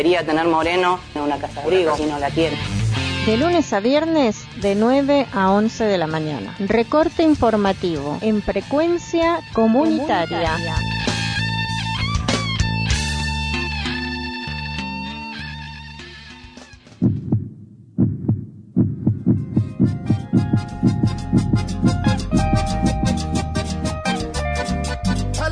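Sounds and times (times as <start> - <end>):
speech: 0.0 - 11.0
music: 0.0 - 17.1, 19.3 - 25.4
heartbeat sound effect of low regular thumps: 17.0 - 23.2.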